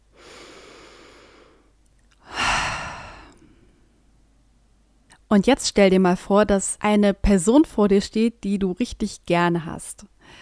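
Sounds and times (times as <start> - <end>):
deep breath in and out during a relaxation exercise: 0.1 - 4.0, 10.2 - 10.3
speech: 5.3 - 10.3.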